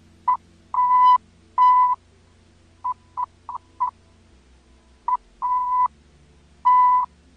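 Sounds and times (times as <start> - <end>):
low hum: 0.0 - 7.3
Morse code tone keying on and off: 0.3 - 2.0, 5.1 - 5.9, 6.7 - 7.1.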